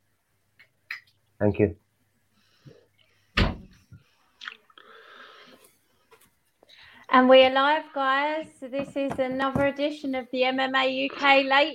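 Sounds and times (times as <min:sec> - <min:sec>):
speech: 0:01.4 - 0:01.8, 0:07.1 - 0:11.7
door shutting with a solid loud thud: 0:03.4 - 0:03.8.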